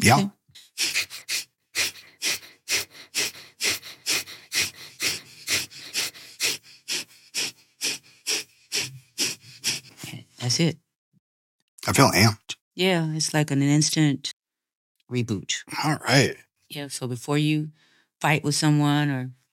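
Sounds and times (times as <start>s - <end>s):
speech: 0.0s - 0.9s, 10.5s - 10.8s, 11.9s - 14.4s, 15.1s - 19.4s
quick forceful inhales and exhales through the nose in breathing exercise: 0.6s - 10.3s.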